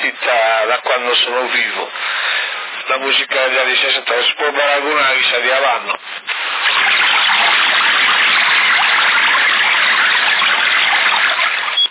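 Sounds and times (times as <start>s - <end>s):
speech: 0.7s - 2.2s, 2.9s - 6.2s
toilet flushing: 6.4s - 11.9s.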